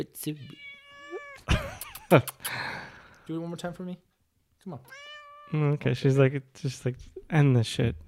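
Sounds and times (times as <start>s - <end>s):
speech: 0.0s - 0.6s, 1.4s - 2.7s, 3.3s - 8.0s
domestic cat meowing: 0.4s - 1.5s, 4.8s - 5.6s.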